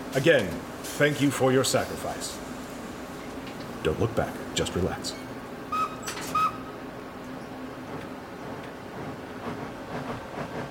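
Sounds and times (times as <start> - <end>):
train pulling into a station with low rumble and clatter: 0.0 - 10.6
speech: 0.2 - 2.6, 3.8 - 5.3
train whistle toots: 5.7 - 6.8.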